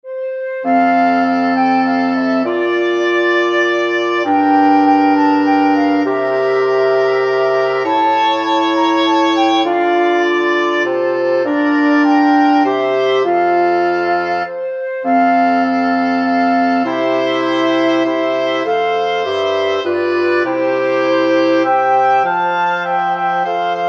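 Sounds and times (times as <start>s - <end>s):
wind quartet playing a Christmas carol: 0.0s - 23.8s.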